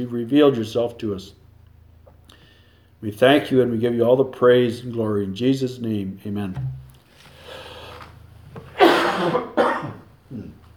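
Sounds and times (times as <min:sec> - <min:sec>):
speech: 0:00.0 - 0:01.4, 0:03.0 - 0:06.8, 0:09.2 - 0:09.5
person coughing: 0:08.7 - 0:10.6.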